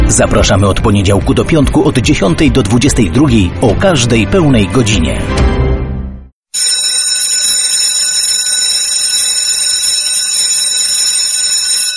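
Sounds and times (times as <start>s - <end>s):
speech: 0.1s - 5.6s
loud electric school bell ringing with harsh metallic clanging: 6.5s - 11.9s.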